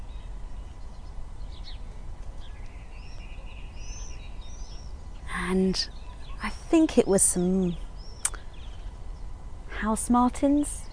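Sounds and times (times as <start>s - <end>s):
great tits and sparrows calling from trees: 0.0s - 6.7s, 7.6s - 9.4s
outdoor noise: 0.0s - 10.9s
speech: 5.5s - 7.8s, 9.8s - 10.9s.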